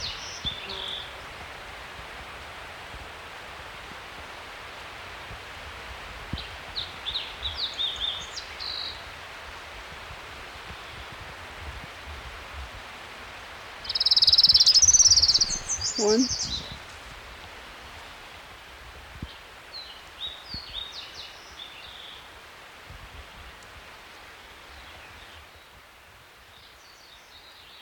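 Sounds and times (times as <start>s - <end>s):
steady hiss: 0.0s - 27.8s
orange-crowned warbler singing along a creek: 13.9s - 16.6s
speech: 16.0s - 16.4s.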